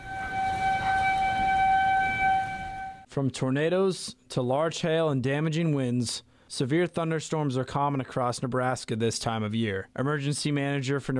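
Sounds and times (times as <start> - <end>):
outdoor severe weather warning siren wailing in Nebraska: 0.0 - 3.1
speech: 3.2 - 11.1.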